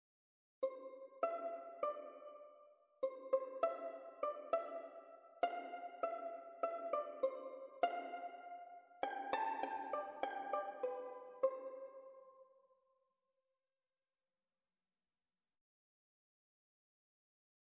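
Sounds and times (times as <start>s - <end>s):
violin pizzicato: 0.6s - 12.5s.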